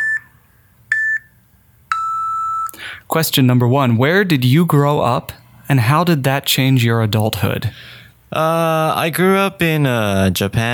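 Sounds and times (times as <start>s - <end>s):
electronic timer beeps: 0.0s - 1.3s, 1.9s - 2.8s
faint hum: 0.0s - 10.7s
speech: 3.0s - 10.7s.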